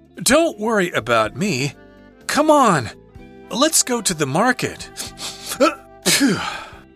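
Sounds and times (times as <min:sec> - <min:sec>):
speech: 0:00.2 - 0:01.8, 0:02.4 - 0:06.6
short rising intake of breath: 0:04.9 - 0:05.6
person sneezing, likely imitated by a voice: 0:04.9 - 0:06.7.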